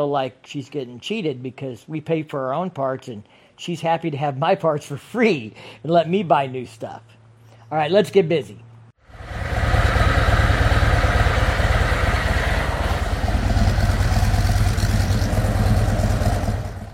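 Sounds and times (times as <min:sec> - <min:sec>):
speech: 0:00.0 - 0:09.5
motorcycle exhaust idling as the engine warms up before an oil change: 0:09.0 - 0:16.9.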